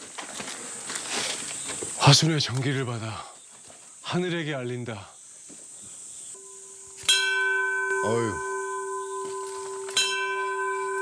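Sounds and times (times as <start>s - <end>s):
insects chirping: 0.0s - 10.9s
speech: 2.1s - 3.4s, 4.1s - 5.2s, 8.0s - 8.5s
large bell struck: 6.4s - 10.9s.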